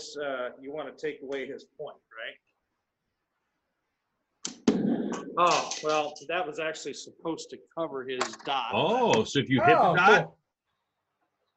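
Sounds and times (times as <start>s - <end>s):
speech: 0.0s - 2.5s, 4.9s - 10.4s
archery tag arrow being shot: 4.4s - 6.1s.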